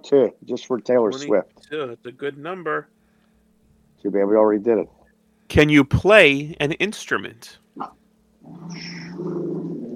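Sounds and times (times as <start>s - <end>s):
speech: 0.0s - 3.0s, 4.0s - 9.4s
dog growling: 7.8s - 9.9s.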